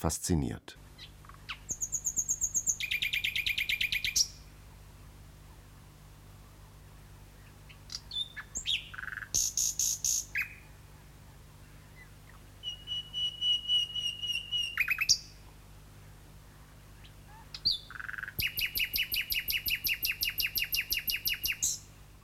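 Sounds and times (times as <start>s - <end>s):
speech: 0.0s - 1.1s
nightingale singing: 1.0s - 4.4s, 7.4s - 10.7s, 11.9s - 15.4s, 17.0s - 21.9s.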